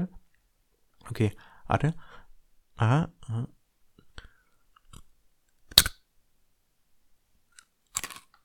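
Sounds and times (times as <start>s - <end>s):
speech: 1.1s - 2.2s, 2.8s - 3.6s
crunching imitation Nicknacks dough-coated peanut snacks: 7.9s - 8.4s.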